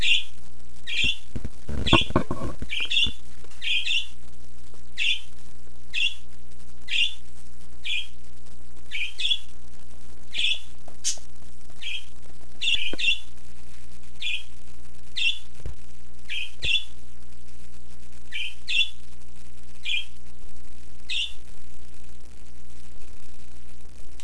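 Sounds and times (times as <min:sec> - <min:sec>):
parakeet chirping happily: 0:00.0 - 0:04.1, 0:05.0 - 0:05.3, 0:05.9 - 0:06.2, 0:06.9 - 0:07.2, 0:07.8 - 0:08.2, 0:08.9 - 0:09.5, 0:10.3 - 0:11.2, 0:11.8 - 0:13.3, 0:14.2 - 0:14.5, 0:15.2 - 0:15.5, 0:16.3 - 0:16.9, 0:18.3 - 0:19.0, 0:19.8 - 0:20.1, 0:21.1 - 0:21.4.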